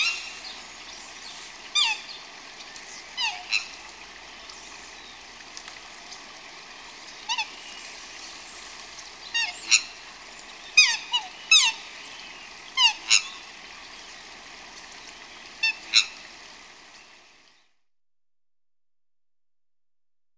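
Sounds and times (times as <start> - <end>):
bird calls: 0.0 - 5.2, 7.2 - 16.8
constant hissing background: 0.0 - 17.8.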